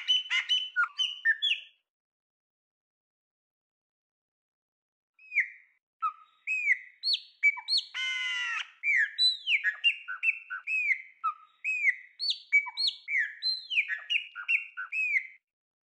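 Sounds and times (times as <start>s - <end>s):
Chopi blackbird song: 0.0s - 1.8s, 5.2s - 15.4s.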